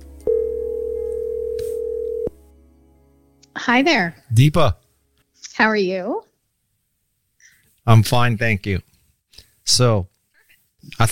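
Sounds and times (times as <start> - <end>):
telephone ringing tone: 0.3 - 2.4
speech: 3.6 - 4.8, 5.6 - 6.3, 7.9 - 8.9, 9.7 - 10.1, 10.8 - 11.1.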